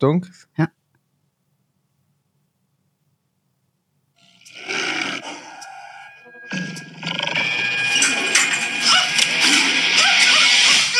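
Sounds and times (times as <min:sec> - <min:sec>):
speech: 0:00.0 - 0:00.8
tiger roaring in a bathroom: 0:04.4 - 0:10.8.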